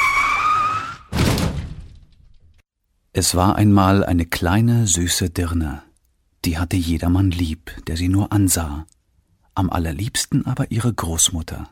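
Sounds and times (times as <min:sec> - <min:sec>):
car tires screeching under hard braking: 0:00.0 - 0:01.1
car crashing into an animal: 0:00.0 - 0:02.2
speech: 0:03.2 - 0:09.0, 0:09.6 - 0:11.7.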